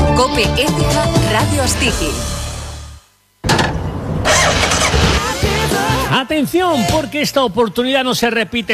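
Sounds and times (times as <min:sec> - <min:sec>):
speech: 0:00.2 - 0:02.4, 0:06.2 - 0:08.7
motorcycle engine starting and revving: 0:04.3 - 0:05.7.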